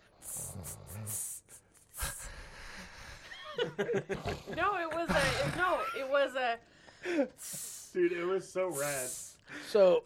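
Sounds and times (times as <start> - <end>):
person imitating a snore with breathy rattling snorts: 0.1 - 2.2
laughter: 3.2 - 6.2
speech: 3.8 - 10.0.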